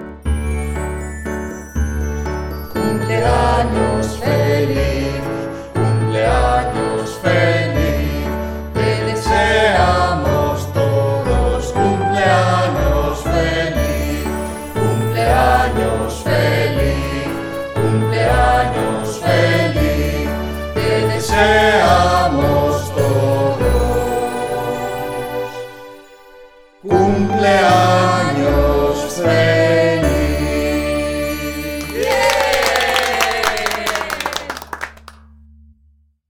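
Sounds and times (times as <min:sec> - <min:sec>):
birthday song in Spanish: 0:00.2 - 0:35.0.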